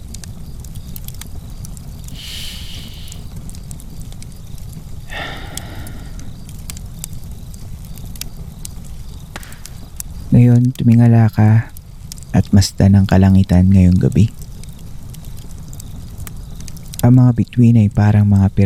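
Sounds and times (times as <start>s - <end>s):
campfire hissing flare-ups: 2.0s - 3.3s, 5.1s - 6.6s
campfire crackling with sharp pops: 2.1s - 3.3s, 5.1s - 6.6s
speech: 10.4s - 11.7s, 12.4s - 14.4s, 17.0s - 18.6s.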